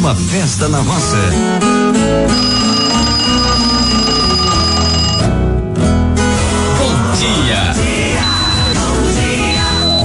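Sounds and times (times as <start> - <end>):
busy musical backing: 0.0 - 10.0
speech: 0.1 - 3.6
loud alarm clock ringing: 2.3 - 5.3.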